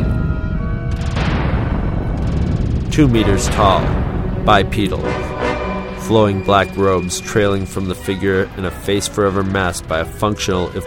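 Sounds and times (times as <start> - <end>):
crackling debris: 0.0 - 5.0
violent explosion: 0.0 - 8.6
speech: 3.0 - 5.3, 6.1 - 10.8.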